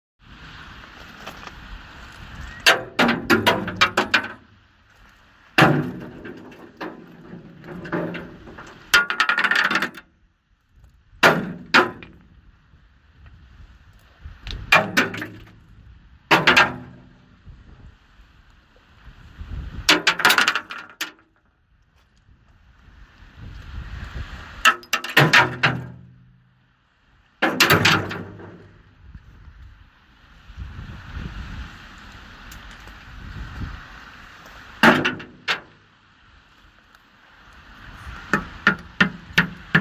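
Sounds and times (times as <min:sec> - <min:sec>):
stones: 0:01.0 - 0:10.1, 0:10.8 - 0:12.3, 0:14.4 - 0:15.7, 0:16.3 - 0:17.3, 0:19.9 - 0:21.5, 0:24.6 - 0:26.4, 0:27.4 - 0:28.9, 0:34.4 - 0:35.9, 0:37.6 - 0:39.7.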